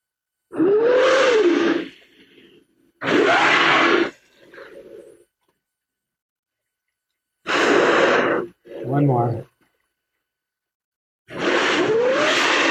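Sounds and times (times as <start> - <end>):
humpback whale roaring and hissing blow: 0.5 - 5.2, 7.4 - 8.8, 11.3 - 12.6.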